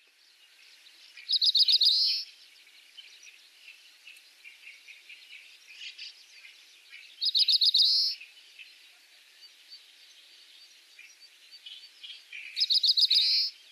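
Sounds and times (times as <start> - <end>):
Oriental Greenfinch soft scattered chirps: 0.0 - 13.7
outdoor background noise in Saitama, Japan: 0.0 - 13.7
Oriental Greenfinch twittering trills in Saitama, Japan: 1.1 - 2.4, 4.1 - 8.8, 9.8 - 13.7.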